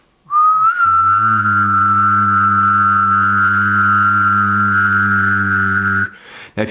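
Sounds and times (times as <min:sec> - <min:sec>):
person whistling a steady tone: 0:00.3 - 0:06.2.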